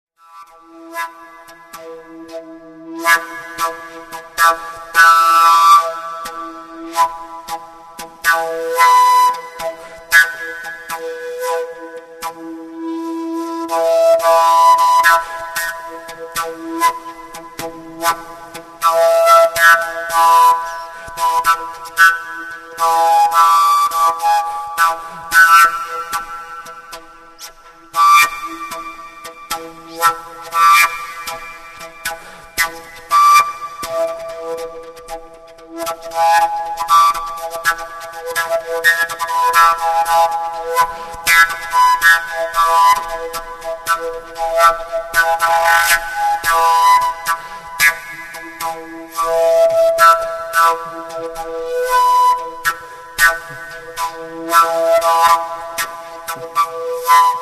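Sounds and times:
overtone flute: 0.2 - 57.3.

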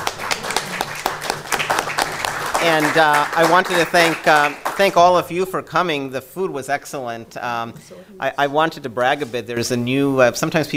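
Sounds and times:
panel discussion audience clapping: 0.0 - 5.2
speech: 2.6 - 10.7.

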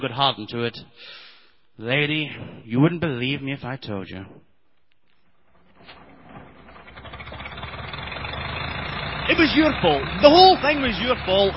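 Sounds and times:
speech: 0.0 - 1.2, 1.8 - 4.4, 9.3 - 11.5
car engine idling: 5.4 - 11.5.

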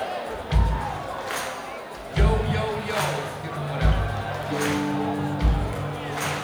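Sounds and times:
crowd stomping along in a large room: 0.0 - 6.4
murmur of voices: 0.0 - 6.4
tonal music in a large room: 2.2 - 6.4.

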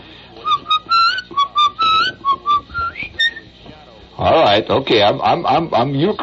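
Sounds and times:
person whistling a short melodic tune: 0.4 - 3.5
speech: 4.2 - 6.2.

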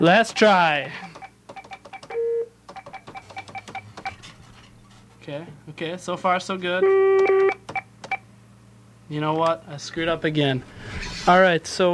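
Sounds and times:
speech: 0.0 - 1.1, 5.3 - 7.5, 9.1 - 11.9
telephone keypad tones as someone dials a phone number: 1.0 - 4.1, 7.1 - 8.2.

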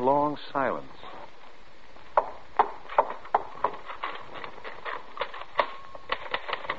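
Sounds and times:
speech: 0.0 - 1.1
typewriter typing: 3.9 - 6.7.

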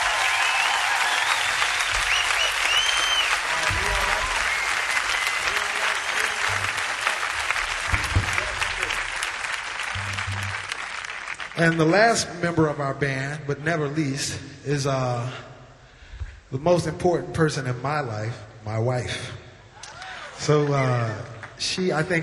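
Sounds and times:
audience applause for a young woman musician: 0.0 - 11.8
speech: 11.6 - 15.5, 16.5 - 19.4, 20.4 - 22.2.

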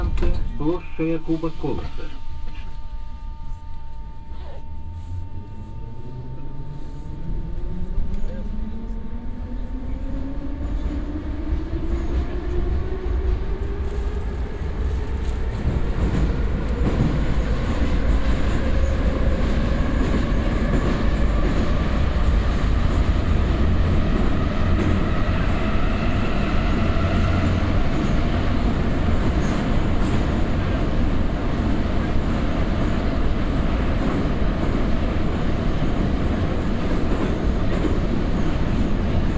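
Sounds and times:
subway train electric motor whine pulling away from a station: 0.0 - 39.3
speech: 0.6 - 2.2.

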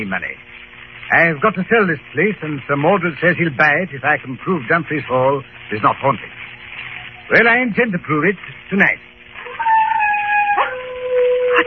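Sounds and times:
speech: 0.0 - 6.4, 7.3 - 9.7
wild dog howling on a moor: 9.4 - 11.6.

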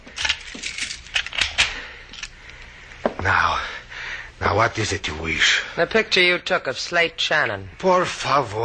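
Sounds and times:
metallic keys jangling and clinking: 0.2 - 2.3
speech: 4.6 - 8.6.

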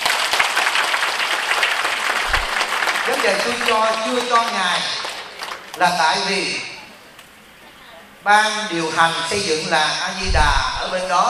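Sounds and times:
audience applause at a gathering: 0.0 - 5.9
speech: 3.2 - 5.0, 5.8 - 6.7, 8.2 - 11.2.

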